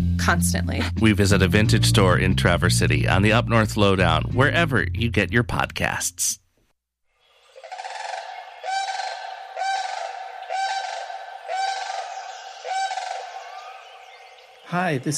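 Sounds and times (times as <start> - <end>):
speech: 0.2 - 6.4, 14.7 - 15.1
sandhill crane bugling: 7.3 - 15.1.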